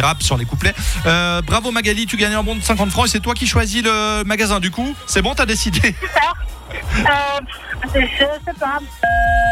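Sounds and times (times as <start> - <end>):
speech: 0.0 - 9.5
woman talking over a phone line: 7.0 - 9.2
telephone keypad key electronic beep: 9.0 - 9.5.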